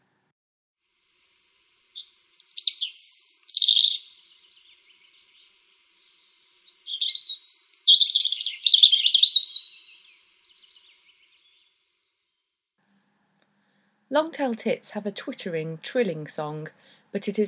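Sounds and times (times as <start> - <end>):
European robin warbling song: 1.7 - 12.5
speech: 14.2 - 17.4.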